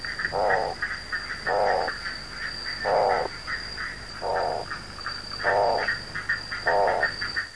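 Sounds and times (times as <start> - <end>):
Otus insularis calling: 0.3 - 0.9, 1.4 - 2.0, 2.8 - 3.3, 4.2 - 4.8, 5.4 - 6.0, 6.5 - 7.5.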